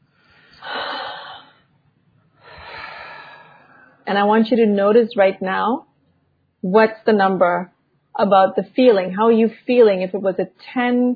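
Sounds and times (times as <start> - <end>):
deep breath: 0.0 - 1.7, 2.4 - 4.1
speech: 4.1 - 5.9, 6.6 - 11.1.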